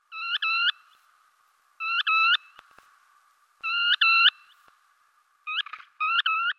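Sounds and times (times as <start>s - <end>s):
Baird's sandpiper Calidris bairdii calling: 0.0s - 1.1s, 1.8s - 2.8s, 3.6s - 4.7s, 5.4s - 6.5s.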